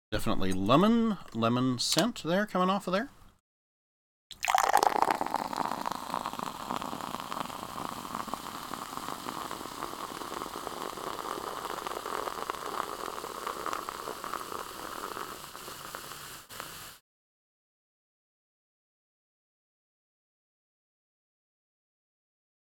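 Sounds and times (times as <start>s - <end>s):
speech: 0.1s - 3.2s
lemon soda poured from a can into a glass, fizzing: 4.3s - 17.0s.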